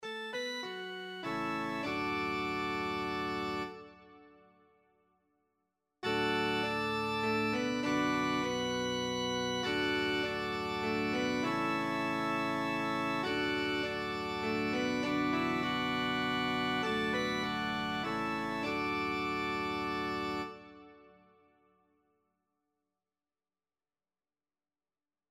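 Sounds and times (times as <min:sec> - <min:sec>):
organ playing a psalm: 0:00.0 - 0:04.4, 0:06.0 - 0:21.2.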